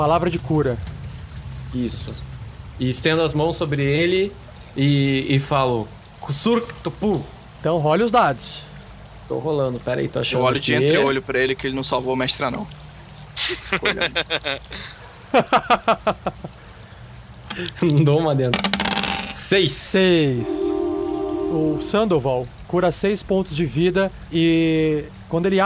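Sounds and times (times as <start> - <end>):
speech: 0.0 - 1.0, 1.7 - 8.7, 9.3 - 12.8, 13.4 - 16.6, 17.6 - 20.7, 21.5 - 25.6
water trickling and dripping in an echoing cave: 0.0 - 18.5, 22.2 - 25.6
laughter: 13.4 - 14.7, 15.4 - 16.5
clicks and clatters: 17.5 - 19.4.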